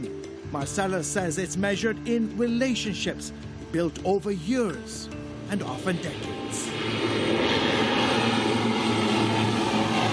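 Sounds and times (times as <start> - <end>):
speech: 0.5 - 7.2
propeller airplane engine roaring as the aircraft comes in to land: 2.6 - 10.1.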